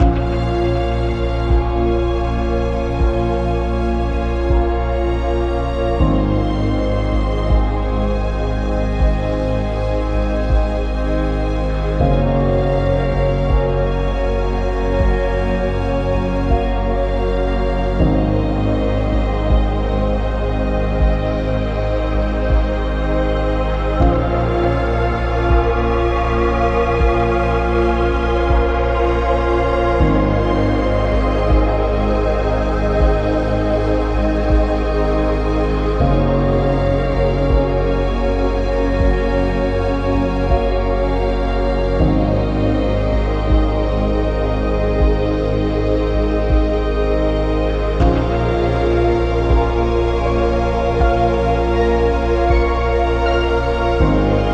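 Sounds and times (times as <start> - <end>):
ambient drone: 0.0 - 54.5.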